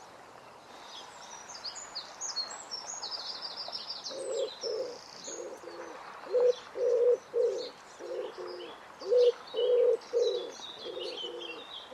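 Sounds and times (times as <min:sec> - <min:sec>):
bird cooing: 0:04.1 - 0:11.9.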